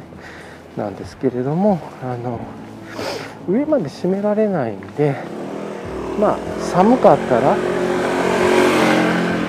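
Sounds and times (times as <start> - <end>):
speech: 0.8 - 5.4, 6.2 - 7.8
motorcycle engine passing by: 5.0 - 9.4.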